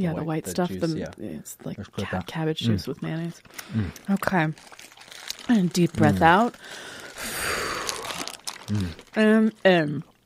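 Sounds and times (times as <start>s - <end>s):
speech: 0.0s - 7.7s, 8.7s - 10.1s
strained voiced grunts: 3.6s - 4.1s, 7.4s - 9.1s
person clearing throat from cartilage stuck in throat while eating spicy food: 8.7s - 9.0s.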